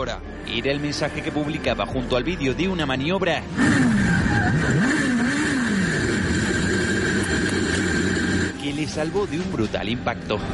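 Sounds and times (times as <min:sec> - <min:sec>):
speech: 0:00.0 - 0:04.8, 0:08.7 - 0:10.5
steady high whine: 0:03.2 - 0:10.5
race car engine roaring at 305 km/h: 0:03.3 - 0:09.8.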